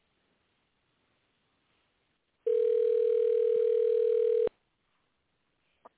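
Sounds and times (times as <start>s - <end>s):
telephone ringing tone from an outgoing call: 2.5s - 4.5s.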